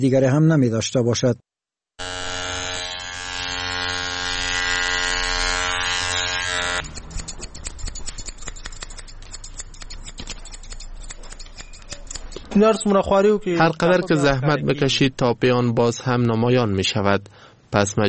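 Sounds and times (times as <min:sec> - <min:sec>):
speech: 0:00.0 - 0:01.5, 0:12.6 - 0:18.0
hair clippers buzzing in a barbershop in Kabul: 0:02.0 - 0:12.6
scissors snipping hair in a barbershop in Kabul: 0:05.4 - 0:13.0.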